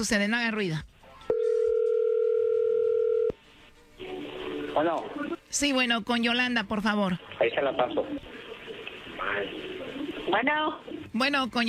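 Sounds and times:
speech: 0.0 - 0.9, 4.8 - 8.3, 9.2 - 9.7, 10.3 - 11.6
ringing tone on a telephone line while a call is placed: 1.3 - 3.4.

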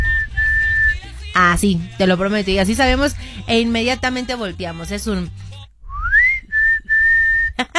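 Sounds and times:
person whistling a family signal call: 0.0 - 1.1, 5.8 - 7.7
speech: 1.4 - 5.5
brief breathy bursts: 3.1 - 3.5.

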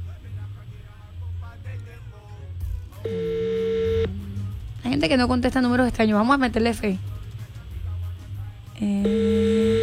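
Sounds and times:
speech: 3.0 - 3.4, 4.9 - 7.1
outgoing telephone call's ringback tone: 3.1 - 4.1, 9.0 - 9.8.

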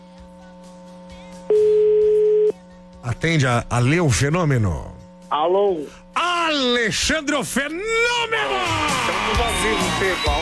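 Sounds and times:
phone line ringing tone on an outgoing call: 0.0 - 8.1
speech: 3.1 - 10.3.

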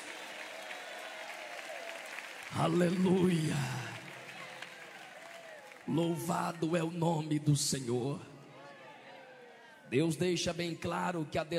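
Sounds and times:
congregation clapping: 0.0 - 6.8
speech: 2.5 - 3.8, 5.9 - 8.3, 9.9 - 11.5.

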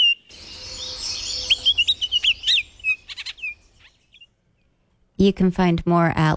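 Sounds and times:
bird chirping and whistling: 0.0 - 4.3
steady hiss: 0.0 - 5.1
speech: 5.2 - 6.3.

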